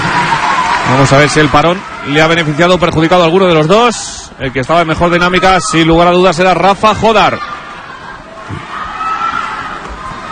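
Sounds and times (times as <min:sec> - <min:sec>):
tennis stadium crowd shouting and cheering: 0:00.0 - 0:10.2
speech: 0:00.9 - 0:07.6.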